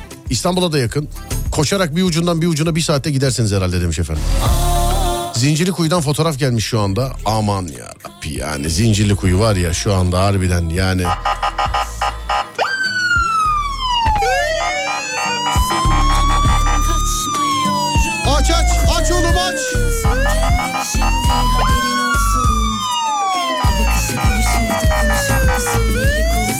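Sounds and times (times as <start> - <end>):
speech: 0.3 - 4.7, 5.4 - 11.8
emergency vehicle sirens wailing in traffic: 11.0 - 26.5.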